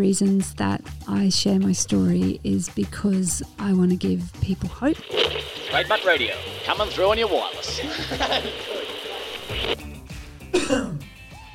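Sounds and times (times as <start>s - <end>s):
speech: 0.0s - 8.8s, 9.5s - 9.9s
laughter: 6.7s - 9.8s
throat-clearing cough into microphone: 10.5s - 11.1s.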